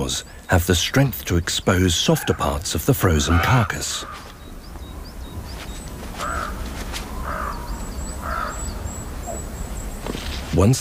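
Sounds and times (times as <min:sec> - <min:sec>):
faint high chirps from other birds: 0:00.0 - 0:10.7
speech: 0:00.1 - 0:04.3, 0:10.6 - 0:10.7
raven giving harsh croaking caws: 0:02.0 - 0:09.8.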